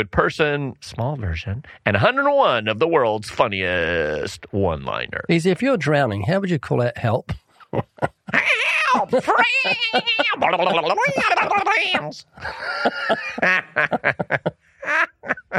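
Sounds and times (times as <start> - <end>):
speech: 0.0 - 14.6, 15.2 - 15.5
laughter: 7.0 - 15.5
voice imitating a cartoon duck with raspy buzzing quacks: 8.3 - 12.2.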